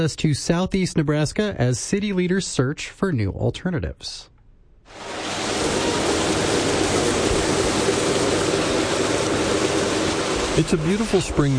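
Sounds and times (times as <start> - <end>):
speech: 0.0 - 4.3, 10.6 - 11.5
creek water flowing: 4.9 - 11.5.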